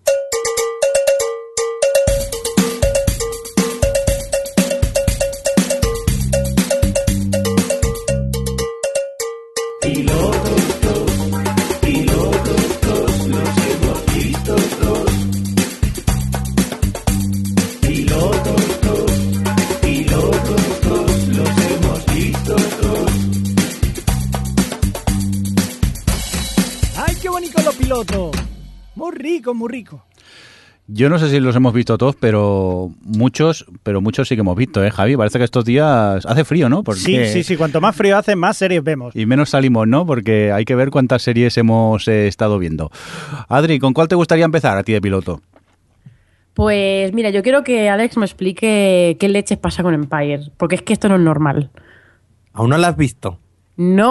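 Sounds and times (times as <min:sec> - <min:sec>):
sparse bell-like percussive hits: 0:00.0 - 0:10.1
upbeat instrumental podcast section theme tune: 0:00.0 - 0:29.9
steady driving drums: 0:01.9 - 0:08.7, 0:09.8 - 0:29.4
speech: 0:29.6 - 0:30.1, 0:30.9 - 0:45.6, 0:46.6 - 0:51.8, 0:52.6 - 0:54.0.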